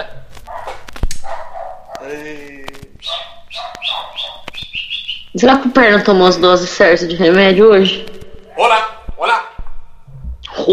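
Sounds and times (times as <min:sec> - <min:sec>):
dog barking: 0:00.5 - 0:02.1, 0:03.0 - 0:04.5
speech: 0:05.4 - 0:08.8.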